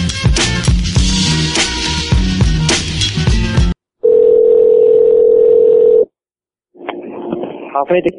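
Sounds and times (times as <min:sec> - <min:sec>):
busy rhythmic music: 0:00.0 - 0:03.8
loud steady telephone dial tone: 0:04.0 - 0:06.1
speech: 0:07.8 - 0:08.1.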